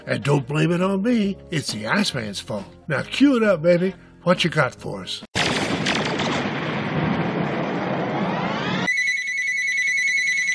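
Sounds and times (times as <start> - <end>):
speech: 0.0 - 6.0
noisy rumbling burst with a rising sweep: 5.5 - 8.8
bright steady electronic telephone ring: 8.9 - 10.5.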